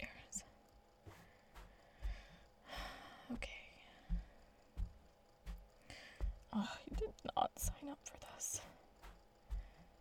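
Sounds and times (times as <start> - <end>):
heavy breathing: 1.0 - 4.6, 5.8 - 6.4
speech: 6.6 - 6.9, 7.8 - 8.9.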